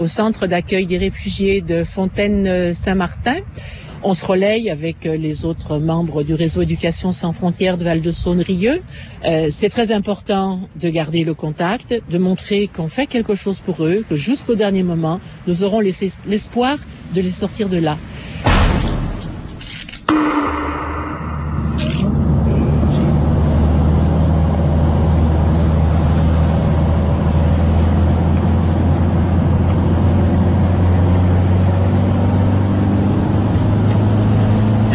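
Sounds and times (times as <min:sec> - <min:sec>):
speech: 0:00.0 - 0:18.9
truck engine drone on the road: 0:19.2 - 0:34.9.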